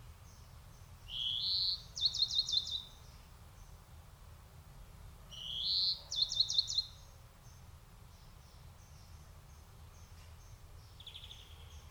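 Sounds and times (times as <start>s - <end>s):
European greenfinch Chloris chloris calling: 1.1s - 3.1s, 5.3s - 7.1s, 10.9s - 11.8s.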